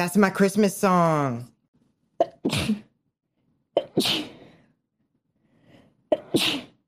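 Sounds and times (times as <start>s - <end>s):
speech: 0.0s - 1.5s, 2.4s - 2.8s, 4.0s - 4.3s, 6.3s - 6.6s
person sneezing: 2.2s - 2.9s, 3.8s - 4.5s, 6.1s - 6.8s.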